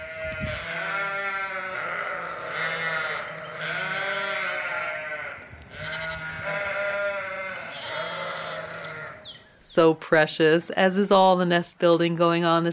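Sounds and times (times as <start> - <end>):
flock of sheep and lambs bleating on a farm: 0.0 - 9.5
speech: 9.8 - 12.7.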